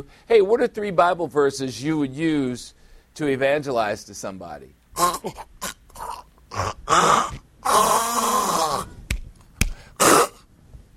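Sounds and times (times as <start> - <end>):
speech: 0.0 - 5.8, 6.6 - 8.5
voice imitating a cat hacking up a hairball: 5.0 - 7.4, 10.0 - 10.4.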